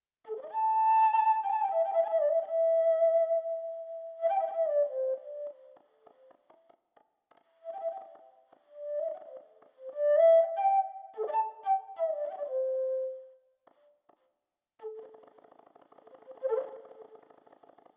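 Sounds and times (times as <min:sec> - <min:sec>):
warbling variable flute: 0:00.3 - 0:05.8, 0:07.6 - 0:13.4, 0:16.2 - 0:17.2.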